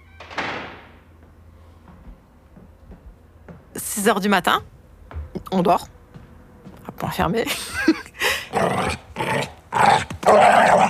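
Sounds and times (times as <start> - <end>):
speech: 4.0 - 4.7, 5.5 - 5.9, 7.0 - 8.0
pit bull snarling and growling: 8.5 - 10.8.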